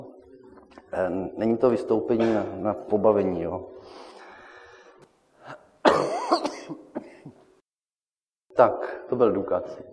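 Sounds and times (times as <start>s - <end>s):
speech: 0.9s - 4.0s, 8.6s - 9.9s
quiet breaths: 3.7s - 5.7s
person coughing in a harsh fit: 5.5s - 7.4s.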